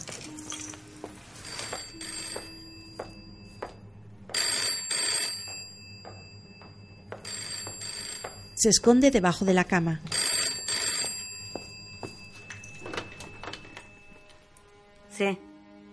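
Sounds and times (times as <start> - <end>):
telephone ringing in a room: 0.2 - 14.5
speech: 8.6 - 10.1.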